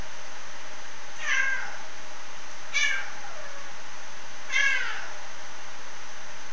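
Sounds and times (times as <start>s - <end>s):
faint hiss: 0.0s - 6.5s
captive rusty-spotted cat meowing in a zoo: 1.2s - 1.9s, 2.7s - 3.7s, 4.5s - 5.2s.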